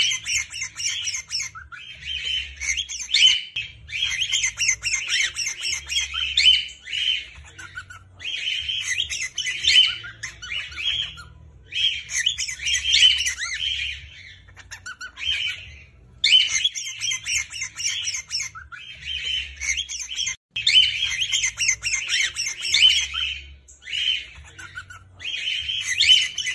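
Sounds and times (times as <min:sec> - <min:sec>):
female and male cockatiel screaming: 0:00.0 - 0:26.5.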